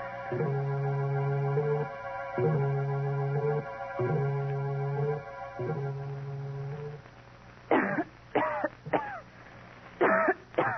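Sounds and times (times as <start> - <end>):
steady repeating low tonal hum: 0.0 - 7.8
woman coughing in the dark: 7.7 - 9.2, 10.0 - 10.7.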